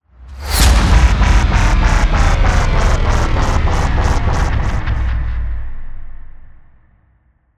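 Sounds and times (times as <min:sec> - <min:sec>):
trailer bass drop: 0:00.4 - 0:06.8.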